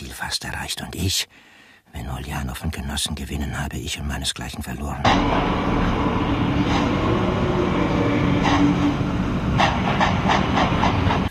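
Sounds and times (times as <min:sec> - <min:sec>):
speech: 0:00.2 - 0:09.1
train standing at a station hissing and rumbling: 0:05.1 - 0:11.2.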